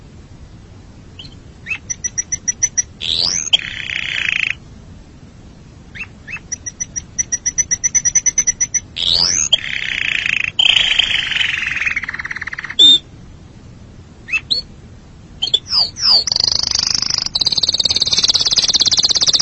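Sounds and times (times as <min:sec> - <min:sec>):
canary song of trills, swooping whistles and buzzy rolls: 0:01.2 - 0:04.6, 0:05.9 - 0:13.1, 0:14.2 - 0:14.7, 0:15.4 - 0:19.4.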